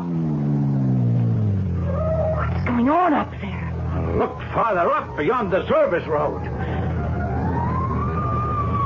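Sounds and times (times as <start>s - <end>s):
engine and road noise: 0.0s - 8.8s
fire engine siren wailing: 1.8s - 2.8s, 3.9s - 8.8s
speech: 2.8s - 3.4s, 4.2s - 6.8s.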